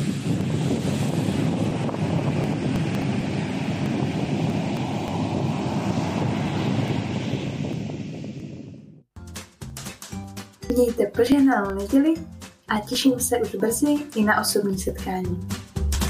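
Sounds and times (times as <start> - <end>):
wind buffeting the microphone: 0.0 - 9.1
speech: 10.8 - 15.6.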